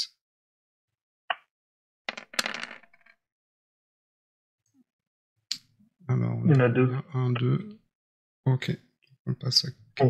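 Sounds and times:
dice rattling and clattering onto a hard surface: 2.1 - 3.2
speech: 6.1 - 7.8, 8.4 - 10.0.

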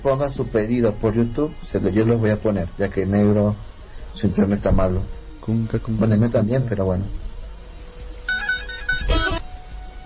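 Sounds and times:
speech: 0.0 - 7.2
mobile phone ringtone: 8.3 - 9.5.

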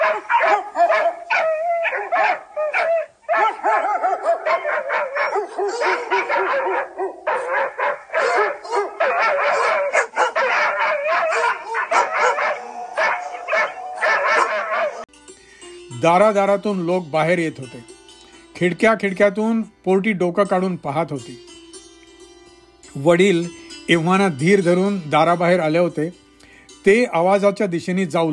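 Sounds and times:
stray dogs in a lane barking loudly: 0.0 - 15.1
speech: 16.0 - 17.9, 18.6 - 21.5, 23.0 - 26.2, 26.8 - 28.3.

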